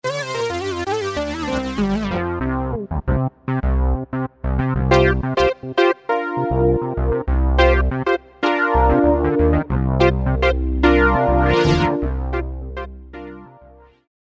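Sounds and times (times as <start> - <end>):
analog synth keys: 0.0 - 3.9, 4.5 - 13.8.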